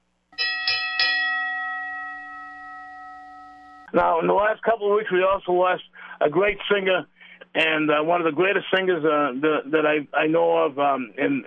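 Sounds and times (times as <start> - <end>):
boxing ring bell tolled as a ten-bell count: 0.4 - 3.9
speech: 3.9 - 11.4.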